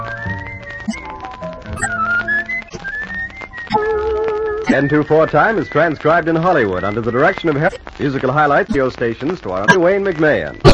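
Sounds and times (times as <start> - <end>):
full musical accompaniment: 0.0 - 7.8
person whistling a bright sliding tune: 1.8 - 3.9
speech: 4.7 - 10.7.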